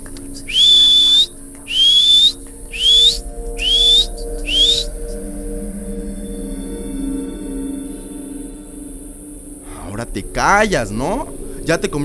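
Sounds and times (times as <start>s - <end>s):
person whistling short rising notes: 0.4s - 4.9s
speech: 10.1s - 12.0s.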